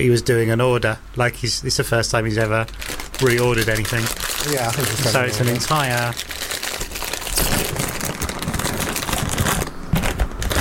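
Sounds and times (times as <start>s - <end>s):
speech: 0.0s - 6.4s
crisp packet crinkling and rustling as it is pulled open: 2.4s - 10.5s.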